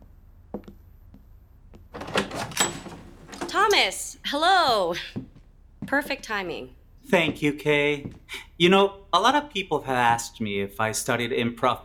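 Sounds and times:
door handle clicks and thumps: 1.9 - 3.6
door swinging open: 1.9 - 3.9
speech: 3.7 - 5.2, 5.9 - 11.8.

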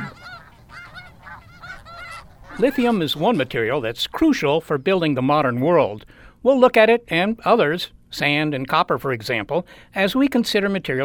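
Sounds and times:
flock of geese honking in chorus: 0.0 - 5.0
speech: 2.6 - 11.0.

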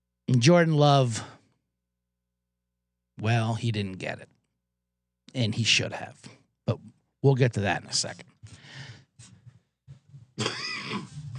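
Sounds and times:
speech: 0.3 - 1.4, 3.2 - 4.3, 5.3 - 9.3, 10.4 - 11.1
person coughing: 10.4 - 11.3
throat clearing: 10.4 - 11.3.

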